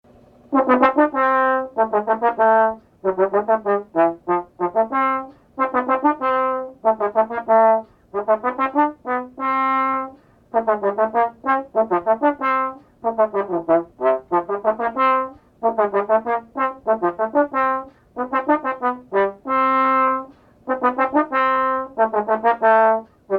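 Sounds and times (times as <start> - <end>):
trombone playing a polka: 0.5 - 23.3.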